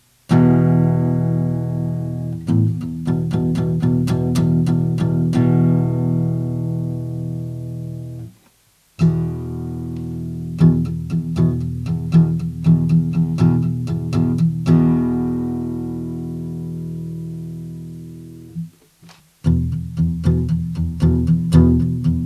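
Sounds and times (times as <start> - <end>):
1982 Ovation Custom Legend acoustic guitar: 0.0 - 22.2.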